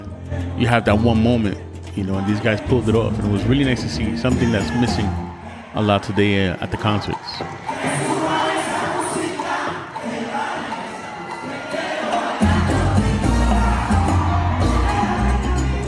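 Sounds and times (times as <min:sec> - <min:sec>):
speech: 0:00.3 - 0:05.2, 0:05.8 - 0:08.0
large concert crowd cheering wildly: 0:02.0 - 0:15.8.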